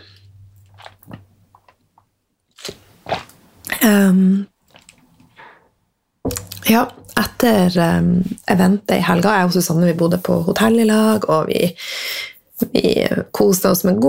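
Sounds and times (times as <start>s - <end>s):
person swallowing: 0.0s - 1.8s, 2.6s - 5.6s
person taking a small sip of water: 0.0s - 1.8s, 2.6s - 3.8s, 4.6s - 5.7s
speech: 3.8s - 4.5s, 6.7s - 12.0s, 12.7s - 14.0s.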